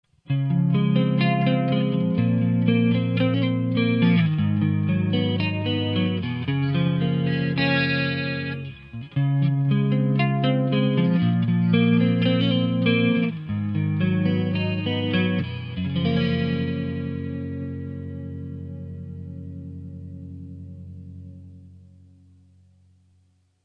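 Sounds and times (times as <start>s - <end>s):
clean electric guitar with reverb: 0.2s - 22.7s.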